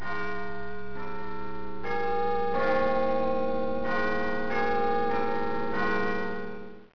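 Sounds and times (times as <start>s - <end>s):
clock bell chiming: 0.0s - 6.9s.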